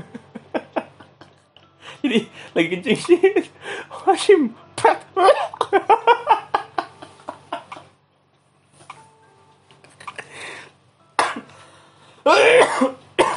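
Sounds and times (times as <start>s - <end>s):
speech: 1.9s - 4.6s, 5.2s - 6.2s
person coughing: 11.2s - 11.5s, 12.3s - 13.3s.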